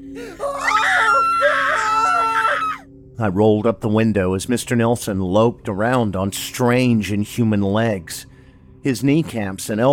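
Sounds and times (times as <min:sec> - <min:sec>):
speech: 0:00.2 - 0:00.7, 0:03.2 - 0:09.9
two people screaming in terror: 0:00.2 - 0:02.9.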